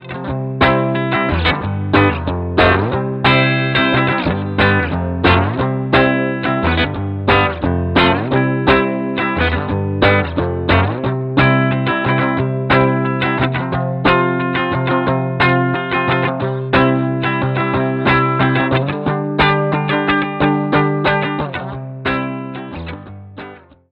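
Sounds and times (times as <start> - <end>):
Gretsch guitar strum: 0.0 - 23.8.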